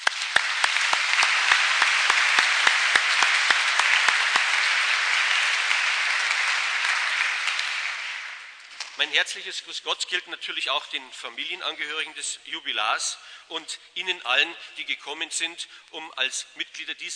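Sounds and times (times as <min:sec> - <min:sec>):
audience applause: 0:00.0 - 0:08.9
speech: 0:09.0 - 0:17.1.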